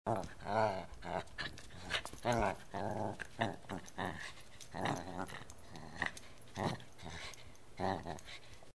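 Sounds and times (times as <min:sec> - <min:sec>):
dog playing with a toy: 0:00.1 - 0:08.7.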